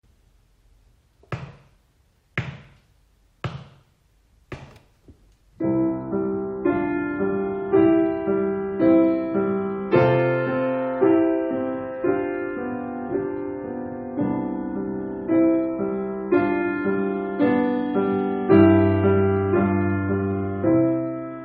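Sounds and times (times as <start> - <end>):
piano duet with teacher parts at practice speed: 5.6 - 21.4.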